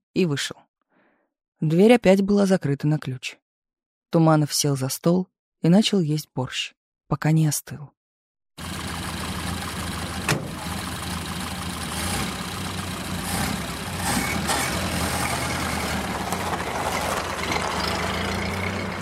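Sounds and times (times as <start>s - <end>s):
speech: 0.2s - 0.6s, 1.6s - 3.4s, 4.1s - 8.0s
Soviet official's car engine running: 8.6s - 19.0s.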